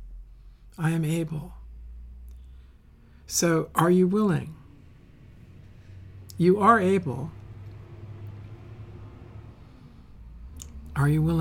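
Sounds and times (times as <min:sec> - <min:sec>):
rush-hour traffic rumbling past: 0:00.1 - 0:11.3
speech: 0:00.8 - 0:01.6, 0:03.3 - 0:04.6, 0:06.4 - 0:07.4, 0:11.0 - 0:11.3.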